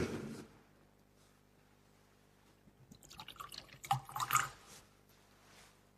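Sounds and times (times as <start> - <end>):
water dripping into wine in a chalice during Mass: 2.9 - 4.6
liquid pouring into a vessel: 2.9 - 4.8.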